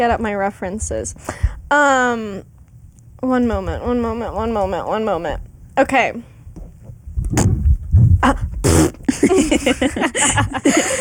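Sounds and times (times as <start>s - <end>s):
speech: 0.0s - 2.5s, 3.2s - 6.3s, 8.2s - 8.5s, 9.2s - 11.0s
fart sound effects: 7.3s - 9.2s
laughter: 9.1s - 11.0s.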